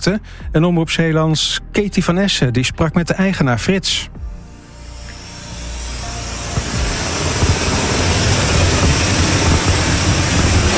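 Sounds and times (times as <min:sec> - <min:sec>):
speech: 0:00.0 - 0:04.2
car lift motor and hydraulics humming while lowering a hail-damaged car: 0:04.4 - 0:10.7.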